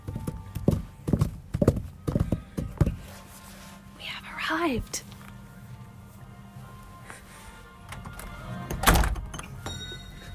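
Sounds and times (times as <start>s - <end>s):
brief rustle and faint shuffling: 0.0s - 8.1s
speech: 4.5s - 5.1s
door opening with a dull thunk: 8.1s - 9.4s.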